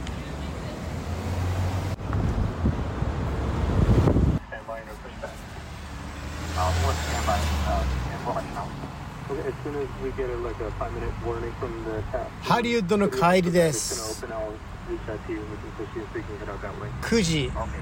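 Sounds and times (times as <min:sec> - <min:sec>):
buses and scooters passing on a busy city street among tall buildings: 0:00.0 - 0:10.7
wind buffeting the microphone: 0:02.0 - 0:04.4
speech: 0:09.7 - 0:17.8.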